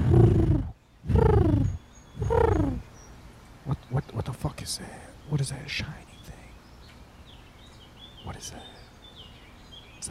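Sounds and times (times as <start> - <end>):
human voice imitating a pigeon cooing: 0.0 - 2.8
speech: 4.7 - 6.0, 8.4 - 8.7.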